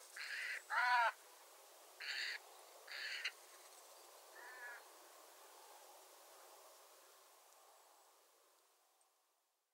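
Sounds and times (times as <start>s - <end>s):
quiet background hiss: 0.0s - 9.7s
Eurasian jay Garrulus glandarius giving harsh rasping calls: 0.2s - 1.2s, 2.0s - 3.3s, 4.4s - 4.8s.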